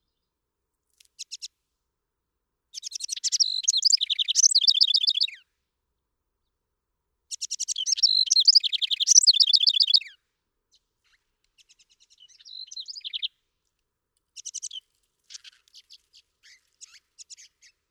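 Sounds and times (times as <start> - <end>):
house wren song with bubbling trill: 2.7 - 5.4, 7.3 - 10.2, 11.6 - 13.3, 14.4 - 17.8.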